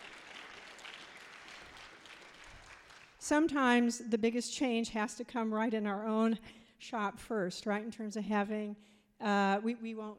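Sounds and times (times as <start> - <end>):
audience applause: 0.0 - 3.2
speech: 3.2 - 10.1.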